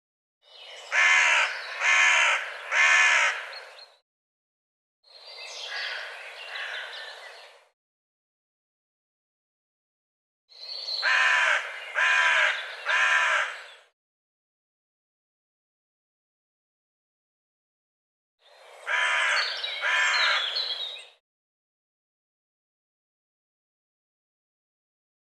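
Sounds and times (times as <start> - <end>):
bird giving harsh crow-like caws: 0.9 - 3.6, 5.7 - 7.0, 11.0 - 13.7, 18.9 - 20.6.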